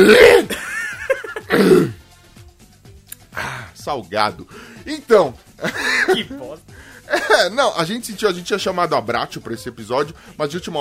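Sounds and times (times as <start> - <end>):
speech: 0.0 - 0.5, 3.9 - 10.7
loud rough throat clearing: 0.0 - 0.6, 1.4 - 2.0
laughter: 0.5 - 1.5, 5.6 - 6.5, 7.1 - 7.6
quiet small mouth sounds: 3.0 - 3.4.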